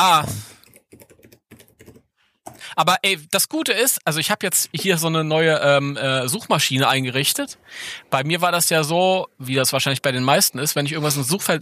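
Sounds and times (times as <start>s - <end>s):
speech: 0.0s - 0.5s, 2.8s - 11.5s
typing on a computer keyboard: 0.6s - 2.6s.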